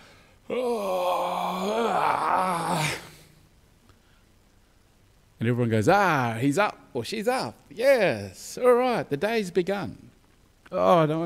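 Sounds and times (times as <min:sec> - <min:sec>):
person yawning while getting out of bed: 0:00.4 - 0:03.3
speech: 0:00.5 - 0:01.0, 0:05.4 - 0:10.1, 0:10.7 - 0:11.2.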